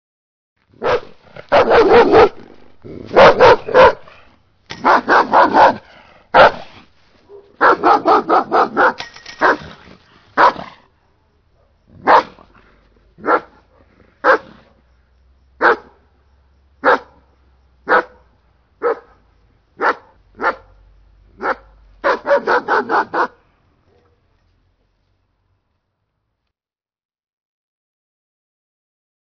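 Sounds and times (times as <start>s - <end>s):
guard dog barking: 0.8s - 2.4s, 3.1s - 4.1s, 4.8s - 6.7s, 7.3s - 9.7s, 10.4s - 10.8s, 11.6s - 12.5s, 13.2s - 14.6s, 15.6s - 16.0s, 16.8s - 17.2s, 17.8s - 19.2s, 19.8s - 20.8s, 21.4s - 24.2s.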